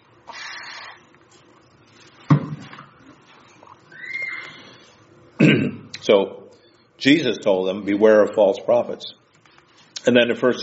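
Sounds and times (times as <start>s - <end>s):
person sipping a drink: 0.2s - 1.5s, 3.1s - 5.0s
cup being set down: 2.3s - 2.9s
speech: 5.6s - 6.4s, 7.0s - 9.2s, 10.0s - 10.6s.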